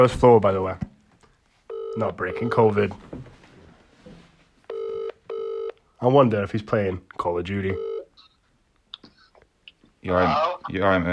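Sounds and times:
speech: 0.0s - 0.9s, 2.0s - 3.3s, 6.0s - 7.9s, 10.0s - 11.1s
electronic phone ringback tones: 1.7s - 2.8s, 4.7s - 5.8s, 7.7s - 8.1s.

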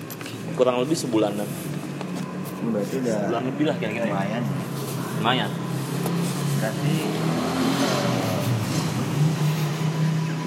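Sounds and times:
speech: 0.6s - 1.8s, 2.6s - 4.6s, 5.2s - 5.7s, 6.6s - 7.6s
motorcycle engine droning and revving: 4.4s - 10.4s.

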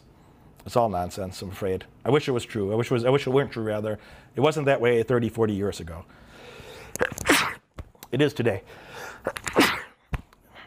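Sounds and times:
speech: 0.6s - 6.2s, 8.1s - 9.6s
person sneezing: 7.0s - 7.7s, 9.1s - 10.1s.

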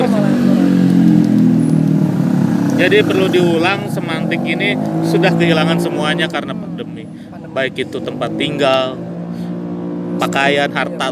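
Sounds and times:
motorcycle engine droning: 0.0s - 11.1s
speech: 2.8s - 9.1s, 10.1s - 11.1s.

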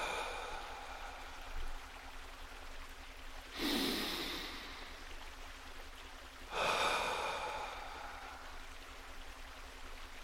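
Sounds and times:
person breathing in through nose and out through mouth: 0.0s - 1.9s, 3.6s - 5.0s, 6.5s - 8.6s.

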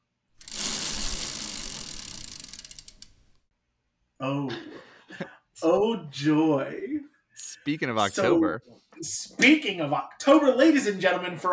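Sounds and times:
prize wheel being spun: 0.4s - 3.2s
speech: 4.2s - 11.5s.

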